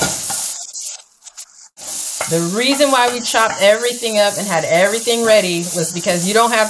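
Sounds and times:
onions and peppers sizzling in a hot pan with olive oil: 0:00.0 - 0:00.9, 0:01.8 - 0:06.6
onions and peppers crackling and popping in a hot pan: 0:00.0 - 0:02.4
speech: 0:02.3 - 0:06.6.

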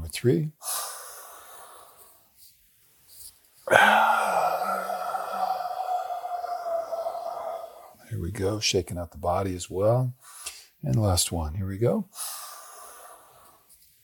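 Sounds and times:
speech: 0:00.1 - 0:00.7, 0:03.7 - 0:04.1, 0:08.2 - 0:12.4
deep breathing during a guided mindfulness exercise: 0:00.6 - 0:02.3, 0:03.7 - 0:08.1, 0:12.1 - 0:13.7.

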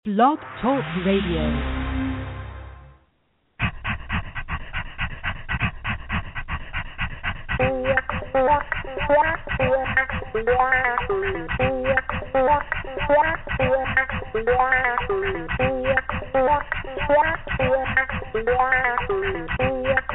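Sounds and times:
speech: 0:00.1 - 0:01.8, 0:10.4 - 0:11.6, 0:14.4 - 0:15.7, 0:18.4 - 0:19.6
brief fading sound: 0:00.4 - 0:03.1
dog panting: 0:03.6 - 0:20.1.

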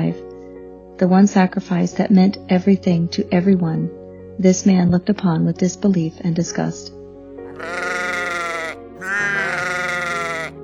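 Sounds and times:
speech: 0:01.0 - 0:07.0, 0:07.6 - 0:07.8
sheep bleating: 0:07.5 - 0:10.6.

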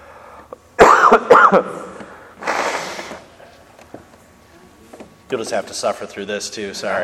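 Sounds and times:
harsh wet coughs: 0:00.8 - 0:02.7
rough noisy throat clearing: 0:00.8 - 0:02.7
speech: 0:01.1 - 0:01.8, 0:05.3 - 0:07.0.

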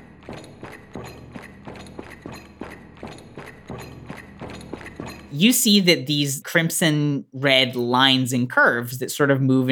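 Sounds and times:
loud clanking footsteps of an armoured knight: 0:00.0 - 0:05.6
speech: 0:05.3 - 0:09.7.

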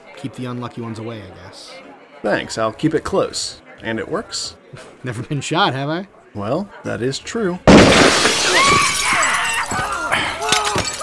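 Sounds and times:
speech: 0:00.2 - 0:09.0
glass shattering with tinkling debris: 0:07.7 - 0:11.0
voices shouting: 0:08.0 - 0:11.0.

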